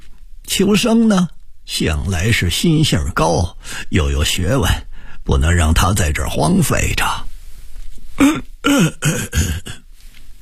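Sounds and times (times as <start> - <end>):
speech: 0.6 - 7.3, 8.2 - 9.8
elderly man coughing and clearing his throat: 8.2 - 9.9.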